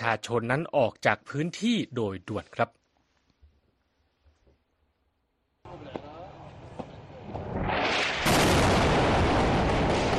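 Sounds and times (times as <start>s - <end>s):
speech: 0.0s - 2.8s
airstrike explosion thuds: 7.4s - 10.1s
loud sustained roaring airstrike blast: 7.4s - 10.1s.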